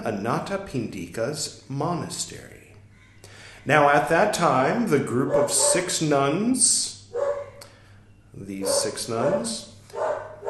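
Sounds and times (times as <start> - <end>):
speech: 0.0 - 2.6, 3.6 - 7.0, 8.4 - 10.0
faint hum: 0.0 - 10.4
dog barking and yipping: 5.2 - 6.0, 7.1 - 7.7, 8.6 - 10.4.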